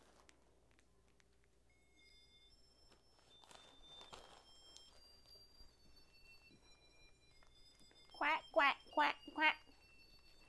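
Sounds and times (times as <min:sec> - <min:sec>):
person's voice imitating duck quacks: 0:08.2 - 0:09.6.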